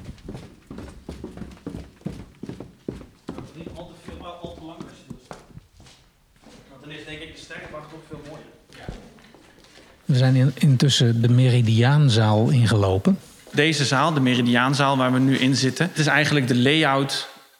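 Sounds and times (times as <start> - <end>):
footsteps of people walking down stairs in an observatory: 0.0 - 15.7
speech: 6.9 - 8.9, 10.1 - 17.3.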